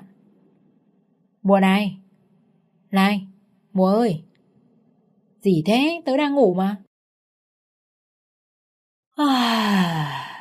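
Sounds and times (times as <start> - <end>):
speech: 1.4 - 2.0, 2.9 - 4.3, 5.4 - 6.8
sleepy young woman yawning in bed: 9.2 - 10.3.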